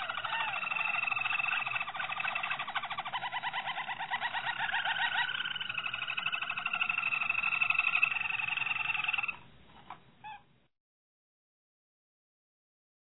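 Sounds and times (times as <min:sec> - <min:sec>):
Harz Roller canary singing long rolling trills: 0:00.0 - 0:10.5.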